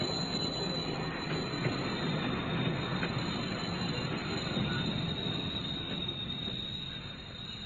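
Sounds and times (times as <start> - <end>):
faint metallic squealing of train wheels on rails: 0.0 - 7.6
train rumbling past below the window: 0.0 - 7.6.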